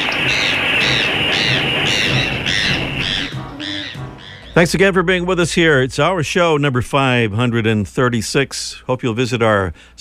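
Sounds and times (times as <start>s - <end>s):
black-billed magpie harsh raspy calls: 0.0s - 4.7s
speech: 4.6s - 9.9s.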